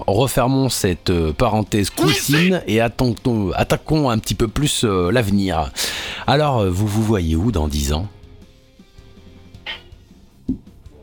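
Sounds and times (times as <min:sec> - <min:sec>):
speech: 0:00.1 - 0:08.2
cat meowing: 0:02.0 - 0:02.5.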